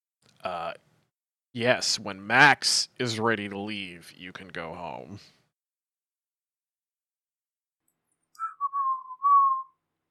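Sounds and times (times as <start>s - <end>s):
speech: 0.4s - 0.9s, 1.5s - 5.4s
person whistling a tune: 8.4s - 9.8s.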